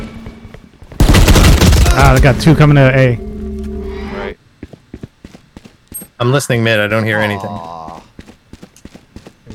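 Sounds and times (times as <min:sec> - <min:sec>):
gunfire in a tactical first-person shooter video game: 0:01.0 - 0:02.4
speech: 0:02.0 - 0:03.3, 0:06.2 - 0:07.8.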